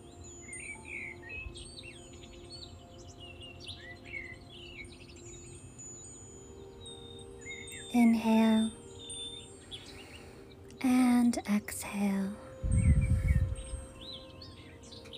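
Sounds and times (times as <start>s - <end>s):
dawn birdsong: 0.0s - 15.1s
speech: 8.0s - 8.8s, 11.5s - 12.4s.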